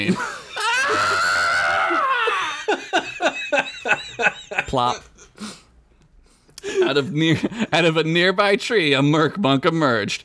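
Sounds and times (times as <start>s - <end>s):
speech: 0.0s - 0.3s, 4.7s - 5.1s, 6.9s - 10.2s
quick breathy panicked yelps and squeaks: 0.5s - 2.7s
voice imitating a worm on a fishing line screaming in terror: 0.6s - 2.6s
laughter: 2.1s - 5.3s.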